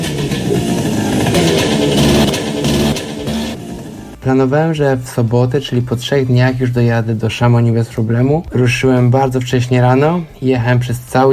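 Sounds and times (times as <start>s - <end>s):
small scooter engine running: 0.0s - 4.2s
speech: 4.2s - 11.3s.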